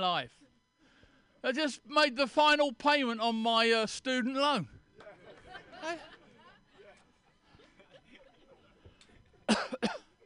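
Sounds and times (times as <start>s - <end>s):
speech: 0.0s - 0.4s, 1.4s - 4.8s, 5.8s - 6.1s
laughter: 5.0s - 9.2s
person coughing: 9.5s - 10.2s.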